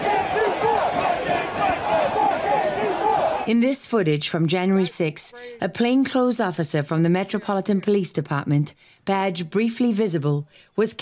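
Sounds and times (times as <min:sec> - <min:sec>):
large crowd of protesters chanting and shouting outdoors: 0:00.0 - 0:03.5
speech: 0:03.5 - 0:11.0.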